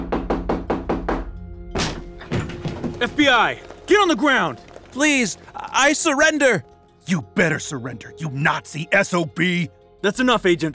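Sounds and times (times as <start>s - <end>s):
authorities knocking and pounding on a door: 0.0s - 3.0s
speech: 3.0s - 10.7s.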